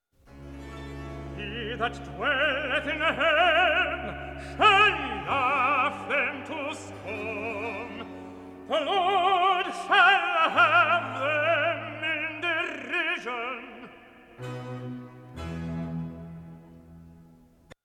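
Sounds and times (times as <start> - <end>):
recitative singing: 1.3 - 14.7.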